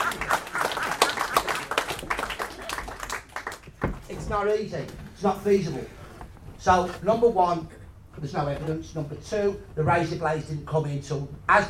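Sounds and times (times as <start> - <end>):
audience applause: 0.0 - 4.0
speech: 4.3 - 6.0, 6.6 - 11.6.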